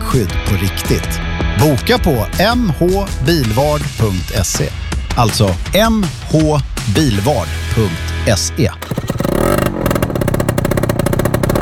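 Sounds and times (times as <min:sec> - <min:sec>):
speech: 0:00.1 - 0:09.0
motorbike engine revving: 0:08.8 - 0:11.6.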